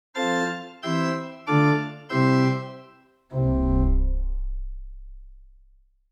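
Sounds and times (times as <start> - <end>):
organ tail test: 0.2 - 5.2.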